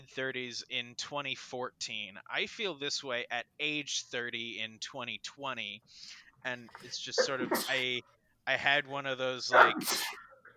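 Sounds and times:
speech: 0:00.1 - 0:10.5
person sneezing: 0:07.2 - 0:07.9, 0:09.6 - 0:10.3.

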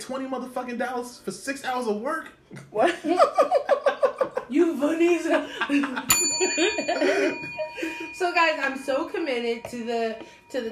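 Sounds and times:
speech: 0:00.0 - 0:10.6
laughter: 0:02.7 - 0:08.1
single bright bell struck: 0:06.1 - 0:10.6.

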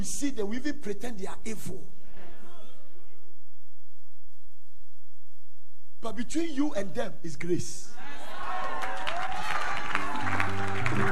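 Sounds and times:
speech: 0:00.0 - 0:02.0, 0:06.0 - 0:08.3
crowd applauding: 0:08.0 - 0:11.0.

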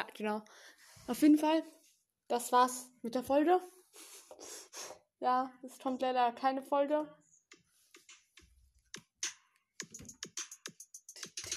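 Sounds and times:
speech: 0:00.0 - 0:07.2
computer keyboard typing during editing work: 0:09.8 - 0:11.5.

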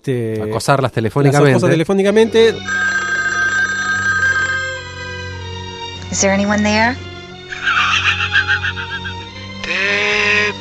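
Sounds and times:
speech: 0:00.0 - 0:02.8, 0:06.1 - 0:08.2
telephone ringing with an electronic trill: 0:02.6 - 0:05.7
laughter: 0:07.5 - 0:09.2.

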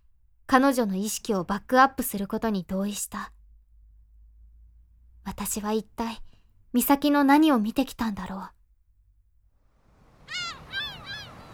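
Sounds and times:
low steady rumble: 0:00.0 - 0:10.2
speech: 0:00.5 - 0:03.4, 0:05.3 - 0:08.6
black-tailed gulls crying overhead: 0:10.0 - 0:11.5.

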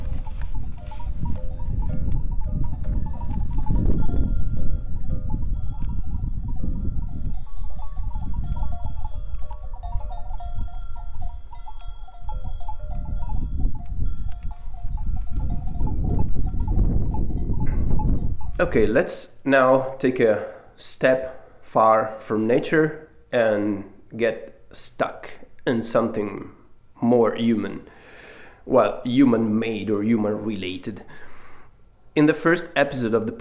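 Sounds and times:
bells worn by grazing cows, sheep or goats clanking: 0:00.0 - 0:18.8
speech: 0:18.6 - 0:28.0, 0:28.7 - 0:31.3, 0:32.2 - 0:33.3.

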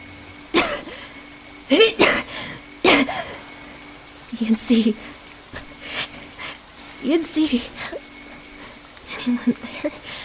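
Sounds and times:
dying woman coughing up blood with harsh raspy coughs: 0:00.6 - 0:01.0, 0:01.9 - 0:02.3, 0:02.9 - 0:03.4
speech: 0:04.4 - 0:05.2, 0:07.0 - 0:08.1, 0:09.2 - 0:10.2.

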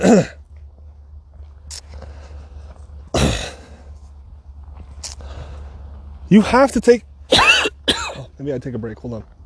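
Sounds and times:
speech: 0:00.0 - 0:00.4, 0:06.3 - 0:07.4, 0:08.4 - 0:09.4
throat clearing: 0:00.0 - 0:00.4, 0:03.1 - 0:03.7
person coughing: 0:03.1 - 0:03.6, 0:07.3 - 0:08.3.

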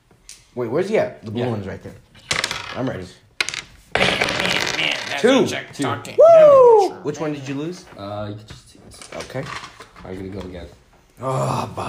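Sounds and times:
speech: 0:00.6 - 0:02.1, 0:02.8 - 0:03.2, 0:05.1 - 0:11.8
dice clattering across a hard tabletop: 0:02.2 - 0:05.5.

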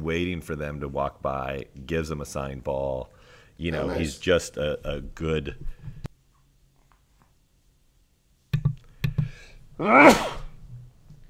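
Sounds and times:
speech: 0:00.0 - 0:06.0, 0:09.8 - 0:10.4
sharp thumps and clicks: 0:08.5 - 0:09.4
single sneeze: 0:09.8 - 0:10.6.

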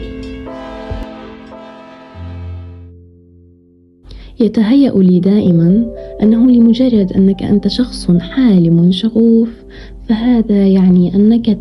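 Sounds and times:
train horn blaring as train departs: 0:00.0 - 0:03.0
speech: 0:04.4 - 0:11.6.

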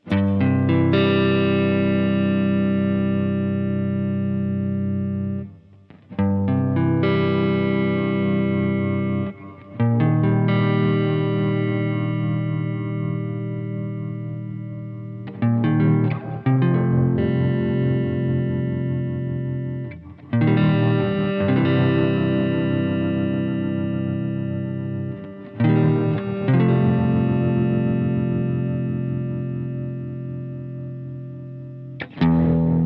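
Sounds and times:
guitar chords through a spring reverb pedal with modulated shimmer effect: 0:00.0 - 0:32.8.

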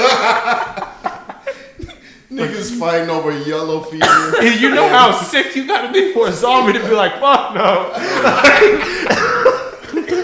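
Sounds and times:
person in a rough coughing fit mixed with laughter: 0:01.5 - 0:02.8, 0:04.0 - 0:05.2, 0:07.9 - 0:10.2
speech: 0:02.4 - 0:09.5.

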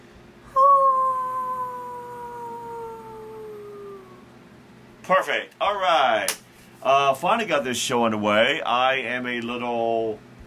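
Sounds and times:
person howling like a wolf: 0:00.5 - 0:04.3
speech: 0:05.1 - 0:10.3.

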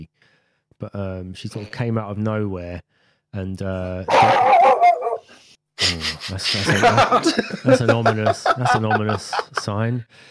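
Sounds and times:
speech: 0:00.8 - 0:04.5, 0:05.8 - 0:10.2
dog barking in deep rough barks: 0:04.1 - 0:05.3
laughter: 0:05.9 - 0:10.0.

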